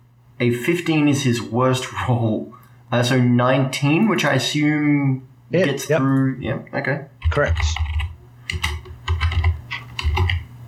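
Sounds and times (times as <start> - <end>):
speech: 0.4 - 7.9
forceful typing on a computer keyboard: 7.2 - 10.5.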